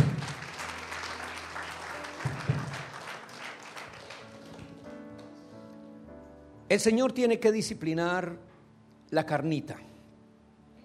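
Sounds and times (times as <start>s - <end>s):
congregation applauding at a church service: 0.0s - 5.4s
speech: 6.7s - 8.5s, 9.1s - 9.9s.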